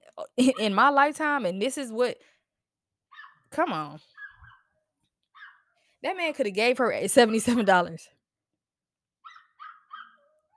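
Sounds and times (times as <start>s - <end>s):
speech: 0.4s - 2.4s, 3.5s - 4.1s, 6.0s - 8.2s
dog giving high-pitched barks: 3.1s - 3.4s, 4.2s - 4.7s, 5.4s - 5.7s, 9.2s - 10.5s
dog whining: 4.1s - 4.7s, 9.2s - 10.5s.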